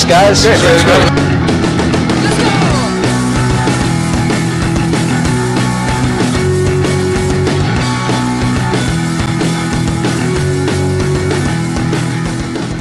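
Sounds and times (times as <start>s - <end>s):
live band playing a loud dense set: 0.0s - 12.7s
speech: 0.1s - 1.3s.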